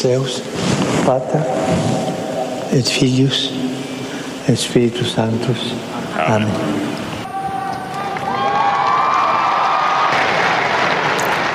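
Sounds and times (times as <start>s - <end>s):
speech: 0.0s - 1.9s, 2.7s - 3.8s, 4.5s - 7.1s
large outdoor crowd applauding: 7.4s - 11.5s.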